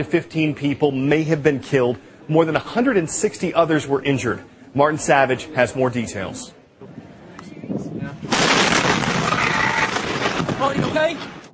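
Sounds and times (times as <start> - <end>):
speech: 0.0 - 6.9, 10.6 - 11.4
fertilizer plant explosion blast in West, Texas: 8.2 - 11.5.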